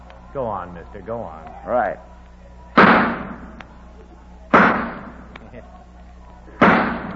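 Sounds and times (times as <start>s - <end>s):
low steady hum: 0.0s - 7.1s
speech: 0.4s - 2.1s
pistol shots: 2.8s - 3.6s, 4.5s - 5.3s, 6.6s - 7.1s.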